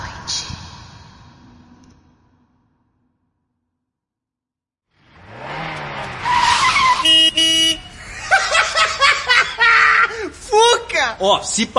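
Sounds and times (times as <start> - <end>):
old smoky car engine revving and whining: 5.0 - 8.2
squealing sputtering noises: 6.1 - 8.0
horn-like tones: 6.3 - 8.0
laughter: 7.6 - 10.4
speech: 11.2 - 11.7.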